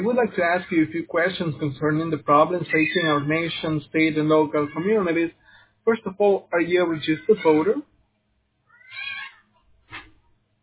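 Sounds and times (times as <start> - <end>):
speech: 0.0 - 7.9
cat yowling: 2.7 - 3.7, 4.5 - 5.2, 6.9 - 7.8, 8.7 - 9.4.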